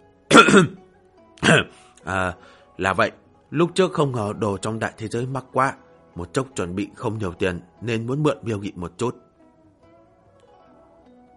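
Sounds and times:
man clearing his throat: 0.3 - 0.8, 1.4 - 1.8
speech: 0.4 - 0.8, 1.4 - 9.2.

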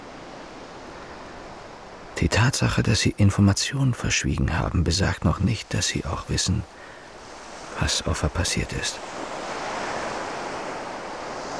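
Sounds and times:
sea waves washing in: 0.0 - 11.5
speech: 2.2 - 7.0, 7.8 - 9.3.

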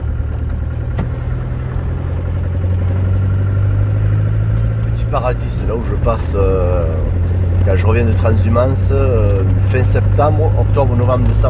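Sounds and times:
car engine droning while driving through garrigue scrubland toward a plateau: 0.0 - 11.4
speech: 5.2 - 11.4.

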